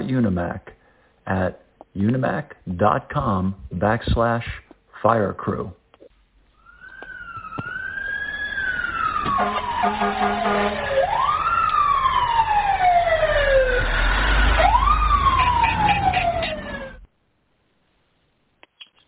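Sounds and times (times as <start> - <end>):
speech: 0.1 - 5.8
fire truck siren wailing: 6.6 - 17.1.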